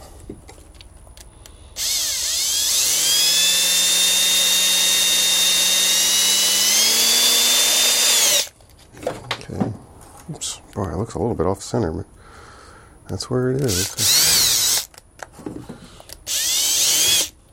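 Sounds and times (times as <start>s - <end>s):
small electric drill boring a hole in a leather belt: 1.8s - 8.5s, 13.7s - 15.0s, 16.0s - 17.4s
speech: 11.0s - 12.2s, 13.1s - 14.2s.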